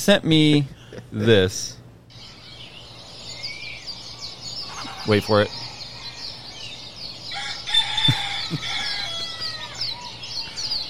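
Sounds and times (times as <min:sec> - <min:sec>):
speech: 0:00.0 - 0:01.8, 0:05.0 - 0:05.6
rooster crowing in the early morning: 0:05.5 - 0:10.8.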